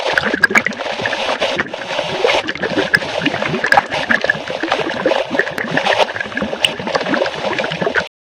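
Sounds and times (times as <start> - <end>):
radio bubbles loop in stereo: 0.0 - 8.1.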